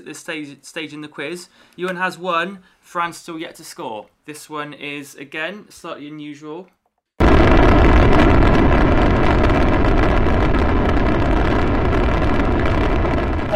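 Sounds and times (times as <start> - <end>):
speech: 0.0 - 6.8
rocket launch roar: 7.2 - 13.5.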